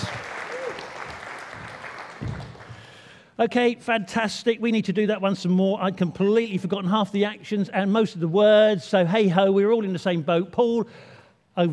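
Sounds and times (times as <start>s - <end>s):
audience applause: 0.0s - 3.2s
speech: 3.4s - 11.7s.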